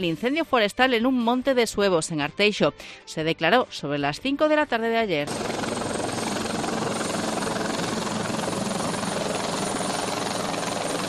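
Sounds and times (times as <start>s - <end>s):
speech: 0.0s - 5.7s
firefighting helicopter flying overhead: 5.2s - 11.0s.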